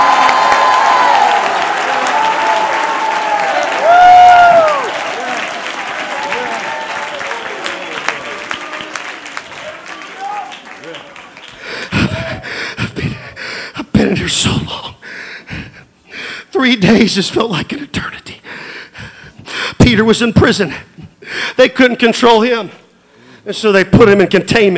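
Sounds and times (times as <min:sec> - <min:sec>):
large audience clapping: 0:00.0 - 0:13.0
speech: 0:16.8 - 0:17.8, 0:20.0 - 0:20.9, 0:21.6 - 0:22.8, 0:23.4 - 0:24.7.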